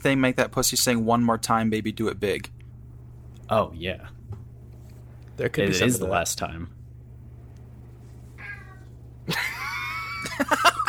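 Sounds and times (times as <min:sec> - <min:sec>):
speech: 0:00.0 - 0:02.6, 0:03.5 - 0:04.2, 0:05.4 - 0:06.8, 0:09.3 - 0:09.6
low hum: 0:00.0 - 0:10.8
cat meowing: 0:08.4 - 0:09.0
laughter: 0:09.2 - 0:10.8.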